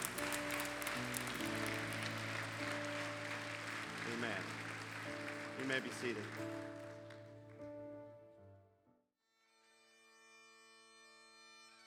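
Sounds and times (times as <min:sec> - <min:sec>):
applause from a large crowd: 0:00.0 - 0:07.9
speech: 0:04.2 - 0:06.8.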